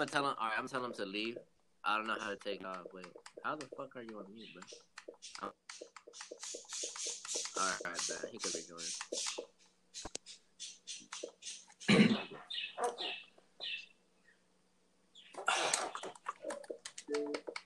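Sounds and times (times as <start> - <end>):
speech: 0.0 - 10.3, 11.9 - 13.2
quick chirpy squeaks: 4.2 - 13.9, 15.2 - 17.6
dog barking: 12.4 - 13.2.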